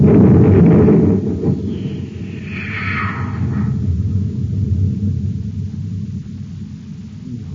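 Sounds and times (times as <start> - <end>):
cosmic torpedo gun on a spaceship firing a torpedo: 0.0 - 7.5
hissing sweep: 1.4 - 6.0.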